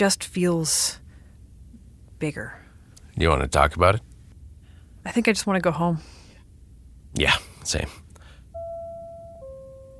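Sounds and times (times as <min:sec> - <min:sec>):
speech: 0:00.0 - 0:01.0, 0:02.2 - 0:02.6, 0:03.2 - 0:04.1, 0:05.0 - 0:06.2, 0:07.1 - 0:08.0
low rumble: 0:00.0 - 0:09.9
two-note electronic door chime: 0:08.5 - 0:09.9.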